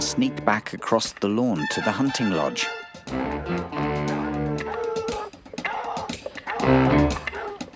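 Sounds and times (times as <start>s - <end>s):
speech: 0.2s - 4.1s
pack of hounds baying and barking while running across a lawn: 4.0s - 7.7s.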